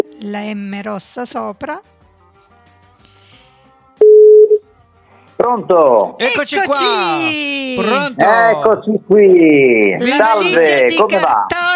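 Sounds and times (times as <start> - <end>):
speech: 0.2 - 1.9, 5.4 - 11.7
telephone line tone while placing a phone call: 4.0 - 4.6.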